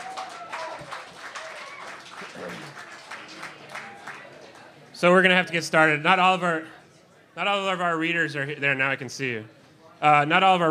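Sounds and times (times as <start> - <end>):
roomful of people applauding: 0.0 - 4.8
speech: 5.0 - 6.8, 7.4 - 10.6.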